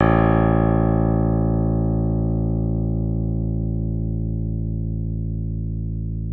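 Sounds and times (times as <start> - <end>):
modelled piano with cross-coupling: 0.0 - 6.2.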